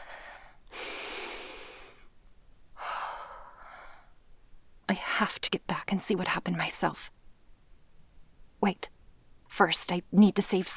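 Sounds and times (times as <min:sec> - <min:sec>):
slow deep breathing to calm down: 0:00.0 - 0:02.1, 0:02.8 - 0:04.2
speech: 0:04.9 - 0:07.2, 0:08.6 - 0:10.7.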